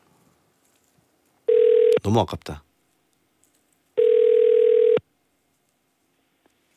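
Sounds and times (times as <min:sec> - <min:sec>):
telephone line electronic beep: 0:01.5 - 0:02.0, 0:04.0 - 0:05.0
speech: 0:02.0 - 0:02.7.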